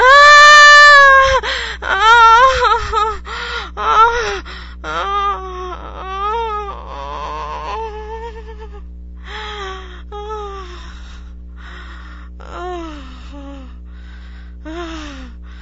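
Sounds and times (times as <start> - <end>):
person moaning and gasping during orgasm: 0.0 - 13.8, 14.6 - 15.5
low steady hum: 0.0 - 15.5
person panting heavily: 1.4 - 1.8, 2.8 - 4.8, 9.3 - 12.4, 13.0 - 15.5.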